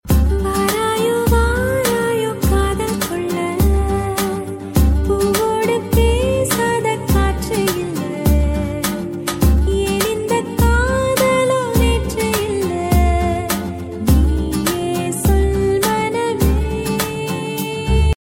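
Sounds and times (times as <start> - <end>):
woman's voice: 0.2 - 18.1.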